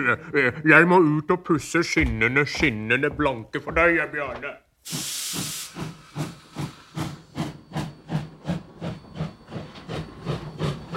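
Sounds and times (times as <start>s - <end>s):
speech: 0.0s - 6.3s
hissing steam from a steam train: 4.8s - 10.9s.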